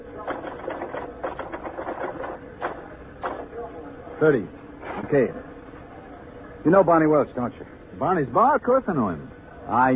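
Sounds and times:
typewriter being typed on: 0.2s - 3.4s
speech: 4.2s - 5.5s, 6.6s - 9.9s.

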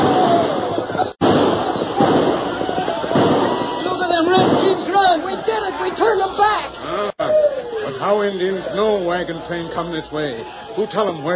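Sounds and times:
buried blasting powder explosions: 0.0s - 5.6s
laughter: 5.6s - 10.0s
speech: 8.1s - 11.3s.

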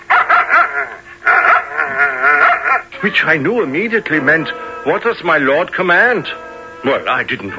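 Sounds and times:
dog yipping and whining: 0.1s - 2.9s
speech: 3.0s - 7.5s.

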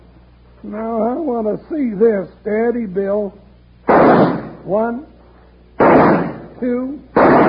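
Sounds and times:
speech: 0.6s - 3.4s, 4.6s - 5.1s, 6.6s - 7.4s
gunshots shooting leaves off a plant stem: 3.9s - 4.8s, 5.8s - 7.4s.

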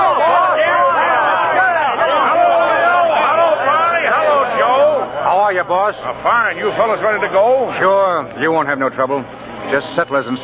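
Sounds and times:
crowd of henchmen cheering loudly: 0.0s - 5.5s
speech: 5.7s - 10.4s.

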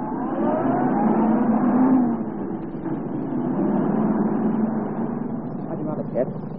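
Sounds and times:
police car engine revving and pulling away on a highway: 0.0s - 6.5s.

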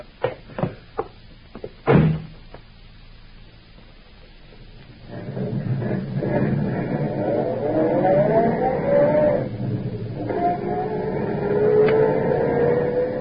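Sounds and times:
car engine revving as the car pulls away: 5.0s - 13.2s.

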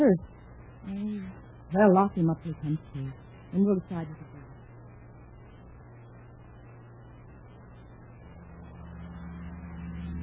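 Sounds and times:
speech: 0.0s - 4.4s
car engine rumble while driving at an even pace: 8.4s - 10.2s.

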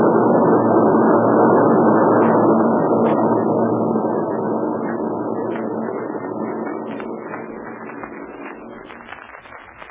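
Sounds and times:
military planes droning overhead: 0.0s - 9.3s.

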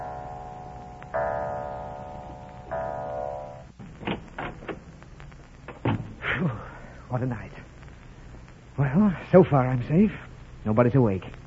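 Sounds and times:
clock chimes: 0.0s - 3.8s
speech: 7.1s - 7.6s, 8.8s - 11.4s.

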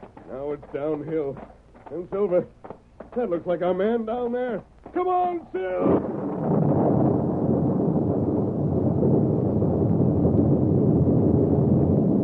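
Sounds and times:
loosened rocks tumbling down a hillside: 0.0s - 7.1s
speech: 0.3s - 6.2s
explosion blast shaking the ground: 5.5s - 12.2s.

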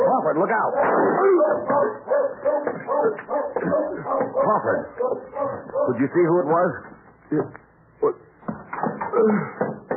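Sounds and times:
speech: 0.3s - 8.2s, 9.2s - 9.6s
watchdog barking and whining yelps: 0.7s - 6.0s.

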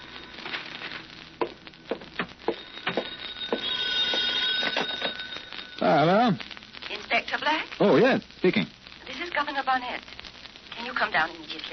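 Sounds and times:
faint crackly hiss: 0.0s - 11.7s
old-fashioned telephone bell ringing with a rattling trill: 2.4s - 6.3s
speech: 7.5s - 8.8s, 9.6s - 10.2s, 10.8s - 11.7s.

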